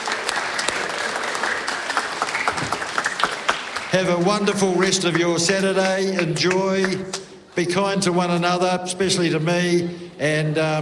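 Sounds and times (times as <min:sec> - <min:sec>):
crowd applauding: 0:00.0 - 0:07.4
speech: 0:03.9 - 0:10.8.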